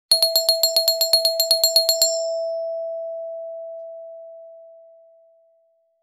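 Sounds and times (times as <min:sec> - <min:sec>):
classic doorbell chime with a pleasant tone: 0:00.1 - 0:03.4.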